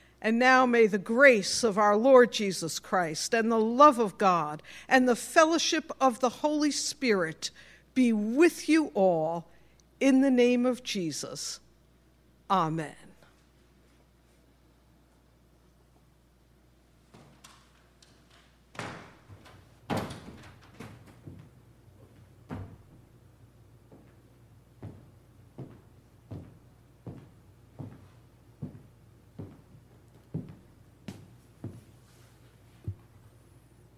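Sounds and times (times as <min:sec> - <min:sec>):
speech: 0:00.2 - 0:11.6, 0:12.5 - 0:13.0
heavy locked church doors being tried and rattled: 0:18.8 - 0:21.2.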